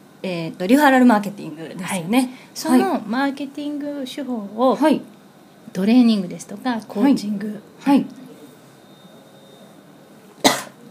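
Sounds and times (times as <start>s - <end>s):
speech: 0.2s - 5.1s, 5.7s - 8.2s
person coughing sharply: 10.4s - 10.9s.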